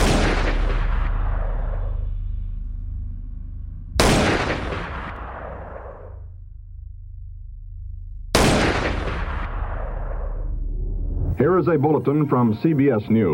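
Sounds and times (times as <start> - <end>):
gunshots echoing over a plaza: 0.0 - 2.0, 4.0 - 6.2, 8.4 - 10.4
low rumbling background: 0.0 - 12.2
speech: 11.4 - 13.3.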